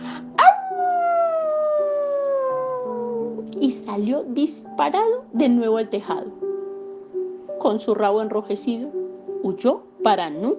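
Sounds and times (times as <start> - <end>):
soft low music: 0.0 - 10.5
wolf yelping and howling in pain: 0.4 - 3.4
speech: 3.6 - 6.4, 7.6 - 10.5.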